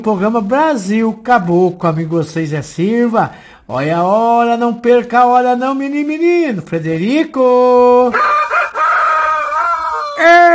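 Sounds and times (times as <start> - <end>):
speech: 0.0 - 8.4, 10.2 - 10.5
rooster crowing: 8.1 - 10.5.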